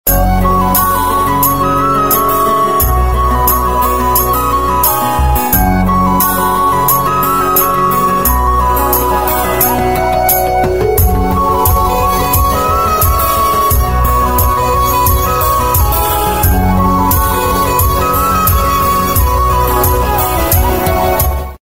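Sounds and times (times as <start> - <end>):
Tamil ringtone: 0.1 - 21.6.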